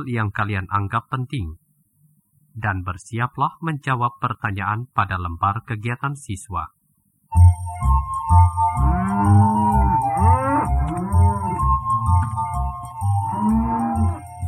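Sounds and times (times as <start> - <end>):
speech: 0.0 - 1.6, 2.6 - 7.6
cow being herded on a grassy pasture mooing: 8.7 - 14.4.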